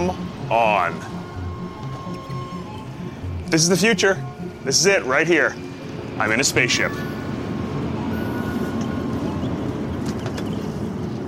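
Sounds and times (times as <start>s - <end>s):
Japanese Shinkansen bullet train travelling at speed from Kamakura to Nagano: 0.0s - 11.2s
speech: 0.1s - 1.2s, 3.5s - 5.6s, 6.2s - 7.1s.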